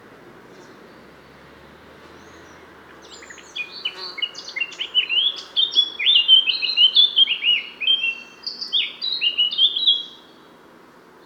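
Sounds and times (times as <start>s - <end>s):
Eurasian blackcap Sylvia atricapilla singing: 3.0s - 10.3s.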